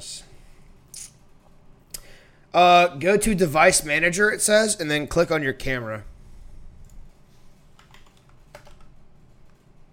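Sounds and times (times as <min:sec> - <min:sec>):
low steady hum: 0:00.0 - 0:09.9
speech: 0:02.6 - 0:06.1
typing on a computer keyboard: 0:07.7 - 0:09.8.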